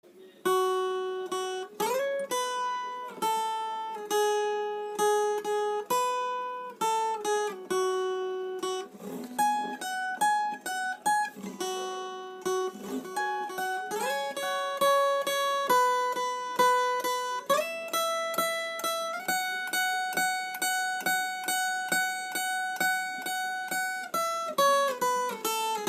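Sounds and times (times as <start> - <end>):
single guitar string: 0.4 - 25.8.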